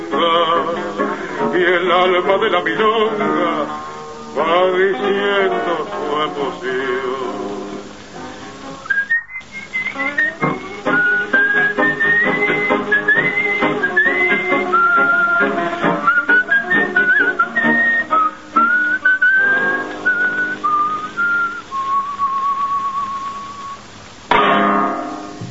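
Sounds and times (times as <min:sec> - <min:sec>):
noisy burst: 0:00.0 - 0:25.5
speech: 0:01.6 - 0:07.5
man whistling a flowing melody: 0:08.8 - 0:23.9.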